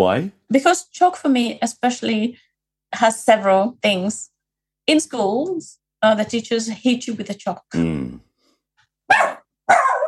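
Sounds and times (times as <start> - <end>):
speech: 0.0 - 4.3, 4.9 - 8.2, 9.1 - 9.8
dog barking: 9.1 - 10.0.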